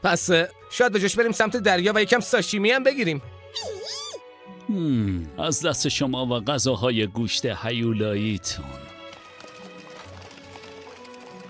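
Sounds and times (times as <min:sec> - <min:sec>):
speech: 0:00.0 - 0:04.0, 0:04.7 - 0:08.9
horse hooves clip-clopping pulling a nobleman's carriage: 0:08.7 - 0:11.4.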